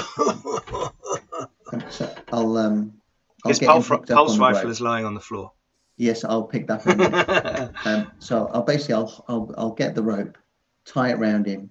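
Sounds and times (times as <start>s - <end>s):
speech: 0.0s - 0.4s, 2.4s - 11.7s
laughter: 0.0s - 2.2s, 3.5s - 4.8s, 6.7s - 8.2s
person acting out a fit of coughing for a game character: 0.0s - 2.2s.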